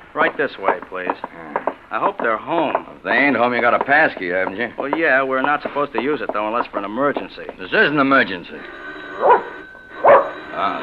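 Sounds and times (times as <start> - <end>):
speech: 0.2 - 9.5, 10.6 - 10.8
dog barking: 9.2 - 10.4.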